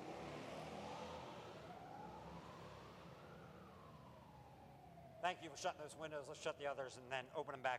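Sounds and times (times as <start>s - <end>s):
motorcycles rumbling past outside: 0.0s - 5.1s
sirens wailing: 0.0s - 7.7s
speech: 5.2s - 7.7s.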